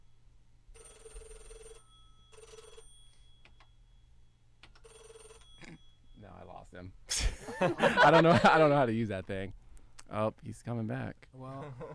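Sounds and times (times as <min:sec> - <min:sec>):
telephone ringing with warbling electronic tone: 0:00.7 - 0:03.8, 0:04.8 - 0:06.0
speech: 0:06.7 - 0:11.9
laughter: 0:07.2 - 0:08.8, 0:11.4 - 0:11.9.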